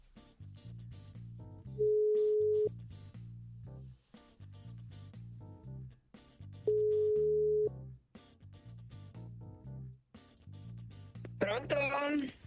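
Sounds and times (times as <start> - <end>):
telephone ringing tone on a call being placed: 1.8 - 2.7, 6.7 - 7.7.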